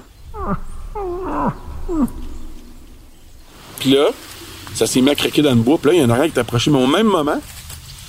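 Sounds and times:
low rumbling background: 0.0s - 6.9s
person imitating moose call in fog: 0.3s - 2.8s
speech: 3.8s - 7.6s.

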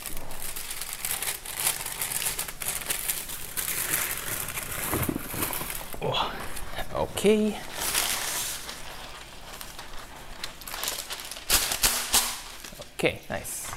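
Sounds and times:
baking paper being torn off to line a baking tray: 0.0s - 12.9s
person moving: 3.6s - 11.6s
speech: 6.1s - 6.4s, 7.0s - 7.7s, 13.0s - 13.5s.

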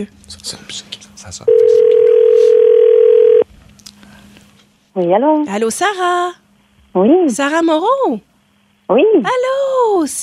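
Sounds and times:
speech: 0.0s - 2.6s, 5.0s - 8.3s, 8.9s - 10.2s
steady electronic telephone tone as a call is placed: 1.5s - 3.4s.

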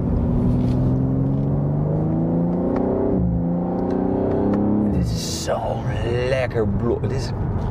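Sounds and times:
BMW sports car engine revving to redline: 0.0s - 5.4s
speech: 5.8s - 7.6s.

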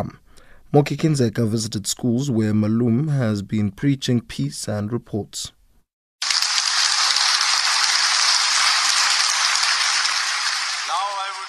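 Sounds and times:
speech: 0.0s - 5.6s
hundreds of schoolchildren applauding: 6.2s - 11.4s.

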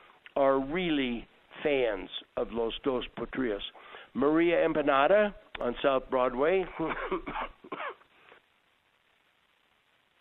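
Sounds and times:
speech: 0.4s - 7.8s
harsh coughs: 6.8s - 8.1s.

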